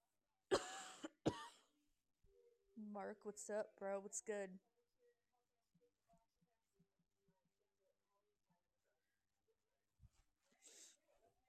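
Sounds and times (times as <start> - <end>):
forceful coughs from one person: 0.5 - 1.7
speech: 2.9 - 4.7.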